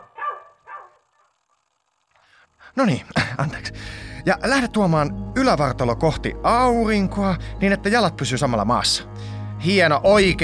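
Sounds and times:
dog barking: 0:00.0 - 0:01.1
speech: 0:02.8 - 0:10.4.

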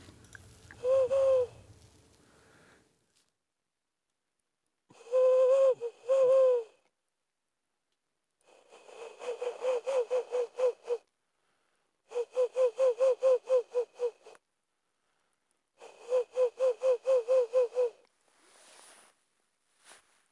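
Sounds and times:
nature guide imitating Ural owl song and contact call: 0:00.7 - 0:01.6, 0:04.9 - 0:06.8, 0:08.7 - 0:11.1, 0:12.1 - 0:14.4, 0:15.8 - 0:18.0.

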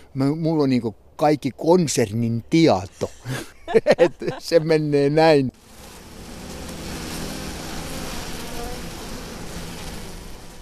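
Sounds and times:
speech: 0:00.2 - 0:05.6
laughter: 0:02.9 - 0:04.9
honeybees buzzing around hives: 0:05.5 - 0:10.6.

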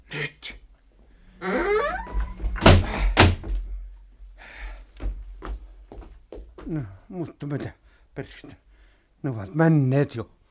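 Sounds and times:
unlocked door creaking: 0:01.3 - 0:03.8
speech: 0:06.7 - 0:08.6, 0:09.2 - 0:10.4.

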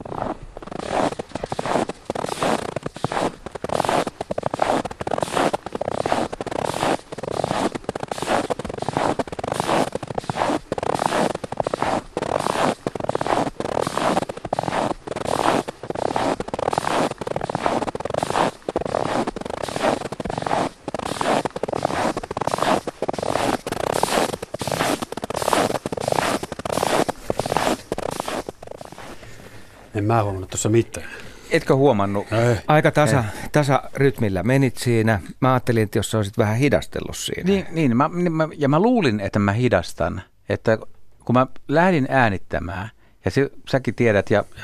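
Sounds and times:
footsteps creaking on thin frozen snow over ice: 0:00.0 - 0:35.0
speech: 0:30.1 - 0:44.6.

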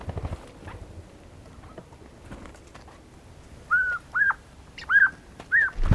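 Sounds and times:
Siberian jay clear whistled mewing notes: 0:03.7 - 0:05.8.

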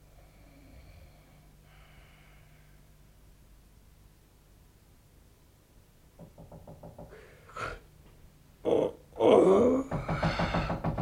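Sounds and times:
light knocks on a door: 0:06.2 - 0:07.2, 0:09.9 - 0:11.0
drawn-out groaning voice: 0:08.6 - 0:10.8.

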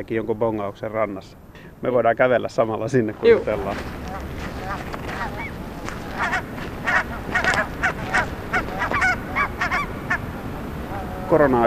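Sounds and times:
speech: 0:00.0 - 0:04.4, 0:11.3 - 0:11.6
low rumble of wind or water: 0:00.0 - 0:11.6
noisy flock of geese honking at a shore: 0:03.2 - 0:11.6.

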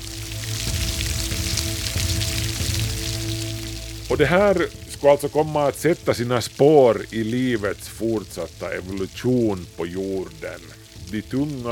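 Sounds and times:
louder water drips: 0:00.0 - 0:11.7
steady rain pattering on a surface: 0:00.0 - 0:11.7
speech: 0:04.1 - 0:11.7.

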